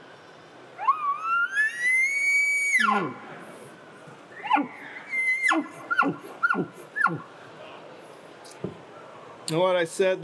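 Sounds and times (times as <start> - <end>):
latex diaphragm mouth call imitating elk bugle with a rising whistling squeal: 0.8 - 3.2, 4.4 - 7.3
speech: 2.9 - 3.3, 9.5 - 10.2.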